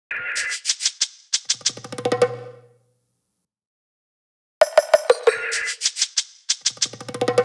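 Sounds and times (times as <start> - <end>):
pop percussion drum loop: 4.6 - 5.8.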